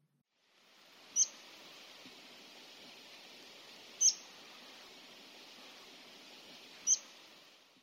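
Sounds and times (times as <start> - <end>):
steady hiss: 0.3 - 7.8
hawfinch ticking calls: 1.1 - 1.5, 3.9 - 4.9, 6.7 - 7.2.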